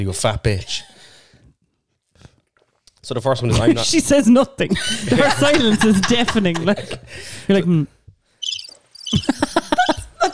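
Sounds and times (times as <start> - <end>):
speech: 0.0 - 0.9, 3.0 - 8.0, 9.1 - 10.0
laughter: 3.4 - 7.9, 9.1 - 10.3
cricket chirping sound effect: 8.4 - 10.1.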